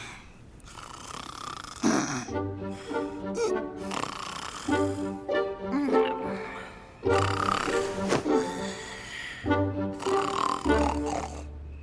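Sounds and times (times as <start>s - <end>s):
person snoring loudly: 0.7s - 2.3s, 3.4s - 6.5s, 7.1s - 8.9s, 9.9s - 11.5s.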